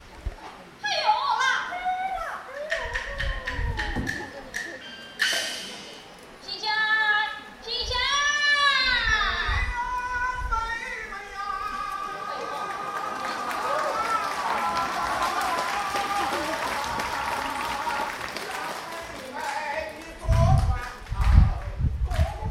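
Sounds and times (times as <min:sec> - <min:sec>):
theatre performance in Chengdu China: 0:00.8 - 0:22.4
laughter: 0:03.9 - 0:04.9, 0:11.6 - 0:19.4.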